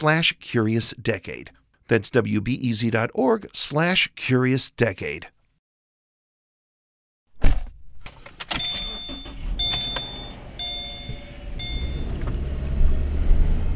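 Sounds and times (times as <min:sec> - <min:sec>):
speech: 0:00.0 - 0:05.4
car driving through a neighborhood street full of potholes: 0:09.2 - 0:13.7.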